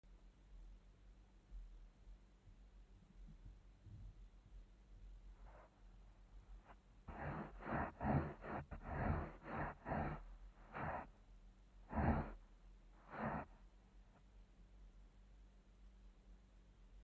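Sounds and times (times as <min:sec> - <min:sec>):
foot dragging on the ground recorded with a geophone: 0:06.6 - 0:11.1, 0:11.9 - 0:12.4, 0:13.0 - 0:13.5.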